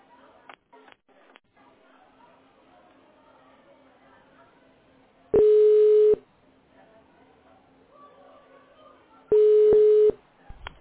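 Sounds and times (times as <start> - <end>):
faint low murmur: 0.0 - 10.7
telephone ringing tones of a call to a clinic: 5.4 - 6.2, 9.3 - 10.2.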